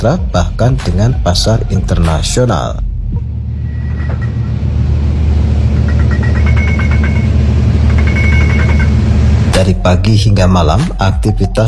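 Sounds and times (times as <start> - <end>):
speech: 0.0 - 3.2, 9.6 - 11.6
heavy equipment rumbling at a busy port in Banten Indonesia: 0.0 - 10.2
ship engines rumbling at a busy port in Banten Indonesia: 0.0 - 11.6
vehicle traffic at a busy port in Banten Indonesia: 2.9 - 9.7
high rapid machinery warning beeps: 5.8 - 9.1.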